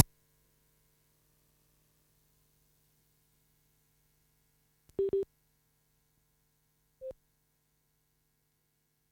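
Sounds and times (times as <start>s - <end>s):
faint steady hum: 0.0s - 9.1s
phone busy tone after call disconnects: 5.0s - 5.2s.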